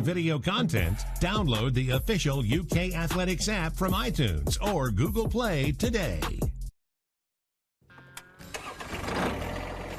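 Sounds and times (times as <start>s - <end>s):
speech: 0.0s - 6.5s
tractor engine starting: 8.0s - 9.9s.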